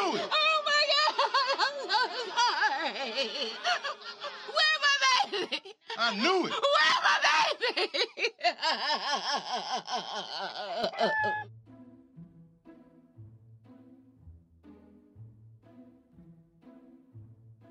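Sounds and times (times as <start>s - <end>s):
laughter: 0.0s - 11.4s
speech: 0.1s - 0.4s, 6.0s - 6.9s, 8.7s - 11.7s
rooster crowing: 10.9s - 11.4s.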